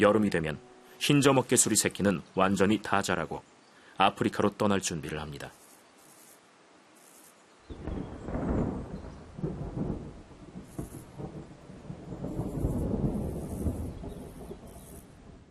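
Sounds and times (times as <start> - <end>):
speech: 0.0 - 5.6
deep thunder rumbling: 7.7 - 15.4
heavy rain pouring: 7.8 - 15.4.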